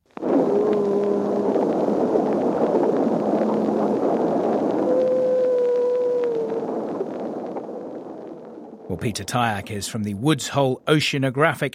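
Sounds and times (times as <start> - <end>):
humpback whale song recorded underwater off the coast of Bermuda: 0.1 - 8.8
speech: 9.0 - 11.7.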